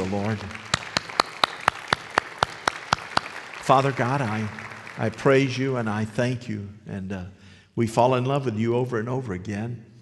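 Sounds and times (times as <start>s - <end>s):
speech: 0.0s - 0.7s, 3.7s - 9.9s
audience clapping in unison: 0.0s - 6.2s.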